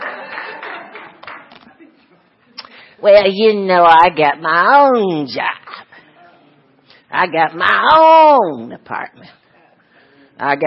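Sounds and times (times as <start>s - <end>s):
audience clapping: 0.0s - 1.7s
speech: 3.0s - 5.6s, 7.1s - 9.4s, 10.4s - 10.6s.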